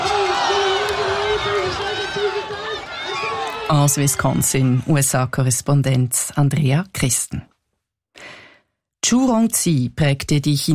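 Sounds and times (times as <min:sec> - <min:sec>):
people shouting at a pig race: 0:00.0 - 0:04.1
crowd cheering at a pig race in Wisconsin USA: 0:00.0 - 0:05.2
speech: 0:03.7 - 0:07.5, 0:09.1 - 0:10.7.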